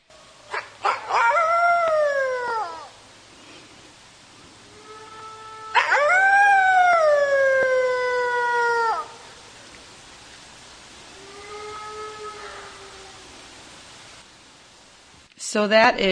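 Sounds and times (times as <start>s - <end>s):
red wolf howling at a wolf conservation center: 0.3s - 3.0s, 4.6s - 9.5s, 11.1s - 13.7s
speech: 15.6s - 16.1s.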